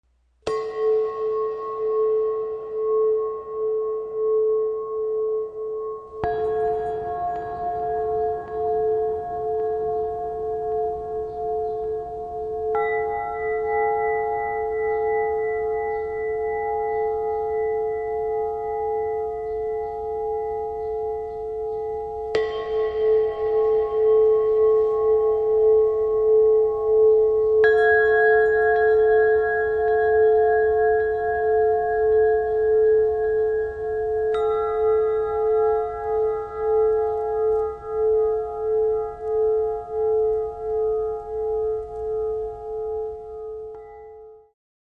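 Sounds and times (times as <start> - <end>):
Burmese gong: 0.4 - 44.5.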